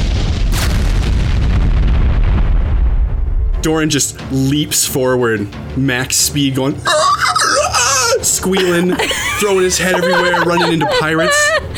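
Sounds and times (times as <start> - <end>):
loud deep explosion with heavy rumble: 0.0 - 4.0
speech: 3.6 - 7.4, 8.3 - 11.6
laughter: 6.9 - 11.7.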